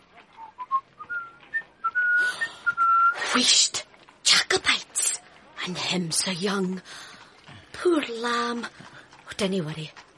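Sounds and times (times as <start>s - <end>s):
person whistling a short lilting tune: 0.4s - 3.2s
speech: 3.4s - 4.8s, 5.6s - 7.1s, 7.8s - 8.8s, 9.4s - 10.0s.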